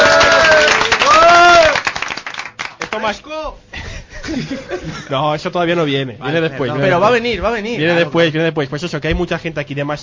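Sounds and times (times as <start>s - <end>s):
excited whoops and cheering voices: 0.0s - 1.9s
studio audience applauding loudly: 0.0s - 3.1s
speech: 3.0s - 10.0s
laughter: 3.7s - 5.1s.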